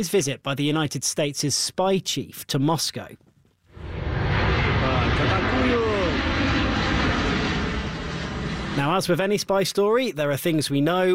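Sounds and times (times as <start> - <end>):
speech: 0.0 - 3.3, 8.8 - 11.1
large military transport plane flying low overhead: 3.7 - 9.7.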